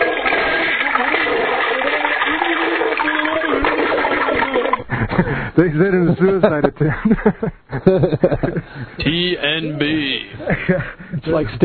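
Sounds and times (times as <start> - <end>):
toilet flushing: 0.0 - 4.9
laughter: 4.7 - 5.4, 6.0 - 11.6
speech: 5.2 - 11.6.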